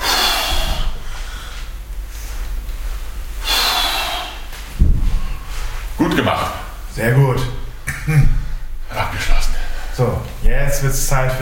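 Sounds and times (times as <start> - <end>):
heavy forceful breathing while exercising: 0.0 - 6.0, 9.4 - 10.2
low thump: 4.7 - 5.5
speech: 6.1 - 8.3, 10.0 - 11.4.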